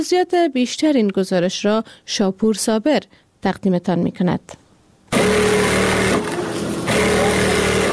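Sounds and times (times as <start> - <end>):
speech: 0.0 - 5.6
electric sewing machines whirring: 5.1 - 7.9.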